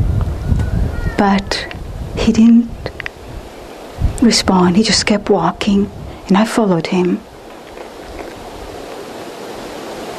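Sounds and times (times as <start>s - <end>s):
ocean surf: 1.0s - 10.1s
speech: 1.2s - 2.8s, 4.2s - 7.3s.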